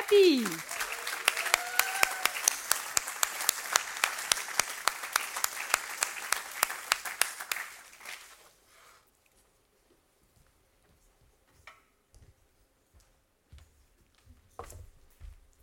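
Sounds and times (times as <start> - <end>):
audience applause: 0.0 - 8.3
speech: 0.1 - 0.8.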